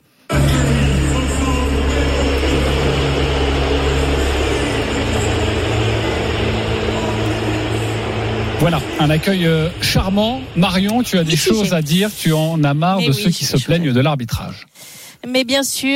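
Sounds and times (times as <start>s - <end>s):
large stadium crowd whistling and jeering at referee's name announcement: 0.3s - 12.7s
speech: 8.6s - 15.9s.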